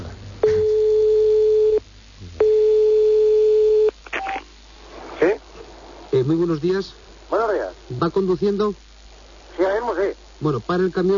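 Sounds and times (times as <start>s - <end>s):
telephone line tones while placing a call: 0.4s - 1.8s, 2.4s - 4.4s
speech: 6.3s - 8.9s, 9.8s - 11.1s.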